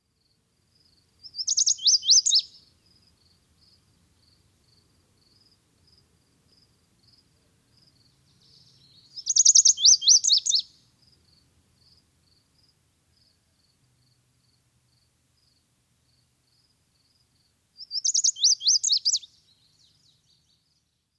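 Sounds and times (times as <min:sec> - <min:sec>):
Lazuli Bunting: 0:01.2 - 0:04.4, 0:07.8 - 0:10.9, 0:17.8 - 0:21.1.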